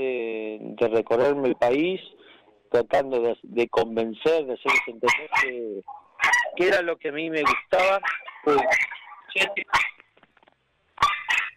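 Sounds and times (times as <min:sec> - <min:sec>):
speech: 0:00.8 - 0:06.0, 0:06.6 - 0:09.9
puppies barking in high-pitched yaps: 0:04.6 - 0:10.1, 0:11.0 - 0:11.5.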